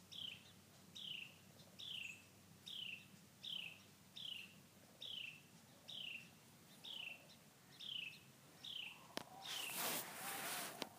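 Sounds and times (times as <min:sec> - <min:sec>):
Carolina wren calling cheer notes in New Mexico: 0:00.0 - 0:10.4
loud rustling noise: 0:09.5 - 0:10.9.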